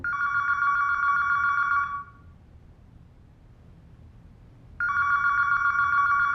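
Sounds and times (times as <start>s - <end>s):
electronic telephone ringing: 0.0s - 2.2s, 4.8s - 6.3s.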